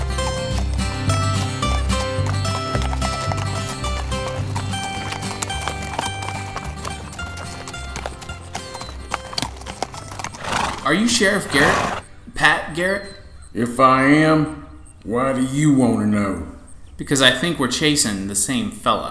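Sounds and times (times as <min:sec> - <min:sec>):
hooves of a ridden horse clip-clopping: 0:00.0 - 0:12.1
speech: 0:10.9 - 0:19.1.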